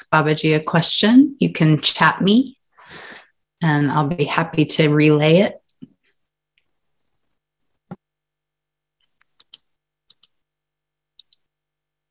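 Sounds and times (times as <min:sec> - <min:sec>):
speech: 0:00.0 - 0:03.0, 0:03.6 - 0:05.6
mouse clicks while clicking through pages: 0:09.0 - 0:10.4, 0:11.2 - 0:11.5.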